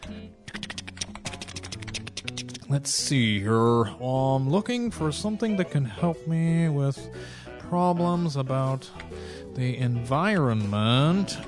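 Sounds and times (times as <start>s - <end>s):
typing on a computer keyboard: 0.5s - 2.6s
speech: 2.7s - 11.4s.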